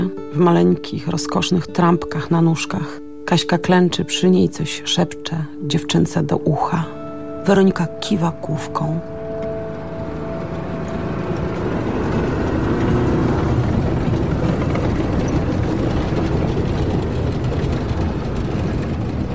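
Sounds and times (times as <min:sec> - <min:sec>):
speech: 0:00.1 - 0:09.1
tank driving past a car in a supermarket lot: 0:09.1 - 0:19.3.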